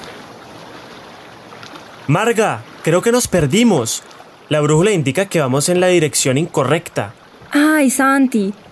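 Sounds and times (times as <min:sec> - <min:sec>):
wind at sea: 0:00.0 - 0:08.6
water washing around a boat at sea: 0:01.7 - 0:08.5
speech: 0:02.1 - 0:08.6.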